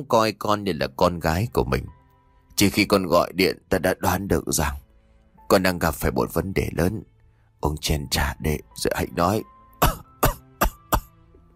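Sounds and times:
speech: 0:00.0 - 0:02.0, 0:02.6 - 0:04.8, 0:05.5 - 0:09.9
old man coughing: 0:09.8 - 0:11.1.

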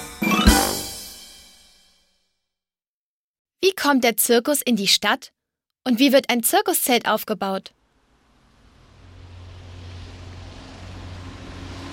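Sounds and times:
speech: 0:03.6 - 0:07.8
broadband road noise of circus wagons and trucks rolling in: 0:07.7 - 0:11.9
circus wagons and trucks engine rumble: 0:07.8 - 0:11.9.

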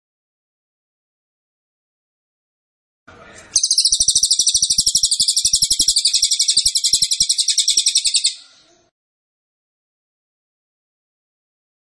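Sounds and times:
Cililin song, sustained high rapid rattling trill of pulsed notes: 0:03.6 - 0:08.4.

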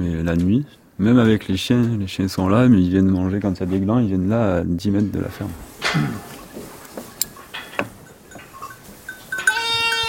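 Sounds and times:
speech: 0:00.0 - 0:06.3
rustling background: 0:00.0 - 0:10.0
sheep bleating at a farm: 0:09.4 - 0:10.0.

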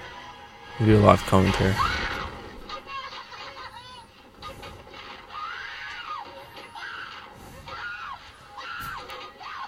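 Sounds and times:
speech: 0:00.8 - 0:02.0
people screaming on a thrill ride: 0:01.6 - 0:02.5, 0:05.2 - 0:09.6.

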